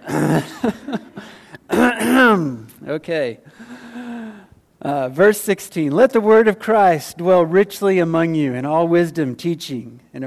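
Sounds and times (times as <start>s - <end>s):
audience clearing throats: 0.0s - 0.7s
speech: 0.2s - 1.0s, 3.0s - 3.6s, 4.8s - 10.2s
laughter: 0.2s - 1.3s.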